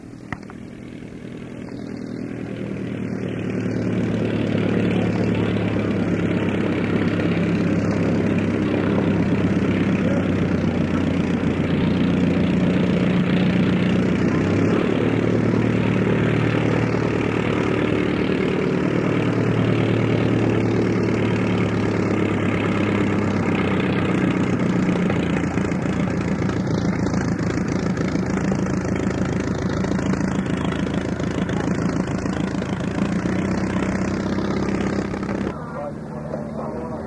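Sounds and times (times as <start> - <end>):
small vintage propeller plane inline engine taxiing: 0.0 - 37.0.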